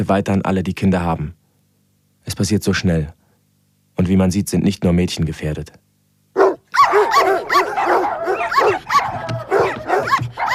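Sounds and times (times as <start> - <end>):
speech: 0.0 - 1.4, 2.2 - 3.2, 4.0 - 5.8
several dogs barking and whimpering: 6.4 - 10.5.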